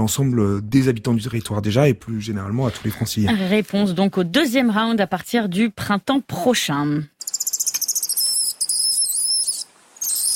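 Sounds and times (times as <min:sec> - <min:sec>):
speech: 0:00.0 - 0:07.1
shrill high-pitched mongoose calls: 0:07.2 - 0:10.3.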